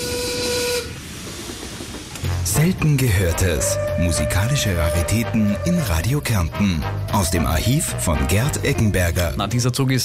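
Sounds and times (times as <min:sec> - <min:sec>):
steam train whistle as the train departs: 0:00.0 - 0:01.1, 0:03.4 - 0:08.0
steam train steam hissing: 0:00.0 - 0:03.6
speech: 0:02.6 - 0:10.0.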